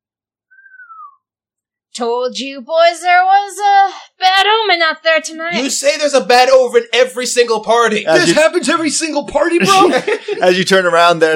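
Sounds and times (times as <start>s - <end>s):
soft human whistle sliding downward in pitch: 0.5s - 1.2s
speech: 2.0s - 11.3s
laughter: 8.1s - 11.2s.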